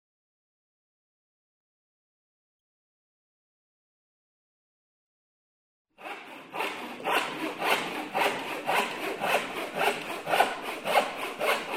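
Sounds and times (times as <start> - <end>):
hand saw cutting through wood: 6.0 - 11.7.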